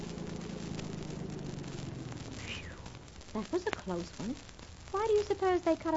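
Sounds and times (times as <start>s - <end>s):
car engine idling after pulling over: 0.0s - 5.9s
faint hiss: 0.0s - 5.9s
speech: 3.4s - 5.9s.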